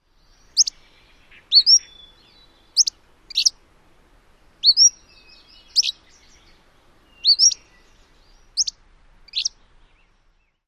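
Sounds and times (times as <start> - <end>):
Cordilleran Flycatcher calling: 0.2 - 3.6, 4.6 - 9.6.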